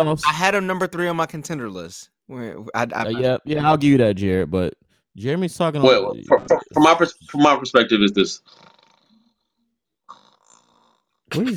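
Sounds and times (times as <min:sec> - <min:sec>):
speech: 0:00.0 - 0:08.7, 0:11.3 - 0:11.5
sleeper snoring: 0:08.4 - 0:11.3.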